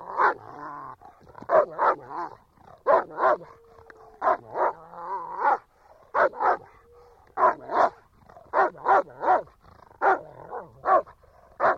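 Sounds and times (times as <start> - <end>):
German Shepherd dog barking: 0.1 - 0.4, 1.5 - 3.6, 4.2 - 4.8, 5.4 - 6.8, 7.4 - 11.7.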